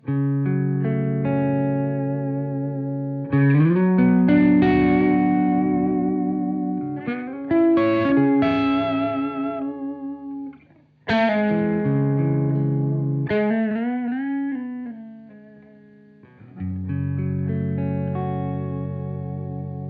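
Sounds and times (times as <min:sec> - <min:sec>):
fuzz pedal on Strat style electric guitar: 0:00.0 - 0:19.8.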